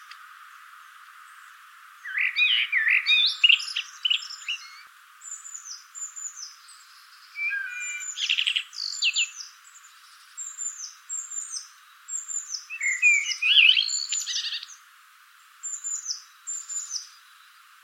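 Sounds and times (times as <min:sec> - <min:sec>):
common blackbird warbling: 0:02.0 - 0:04.9, 0:07.4 - 0:09.4, 0:12.7 - 0:14.7.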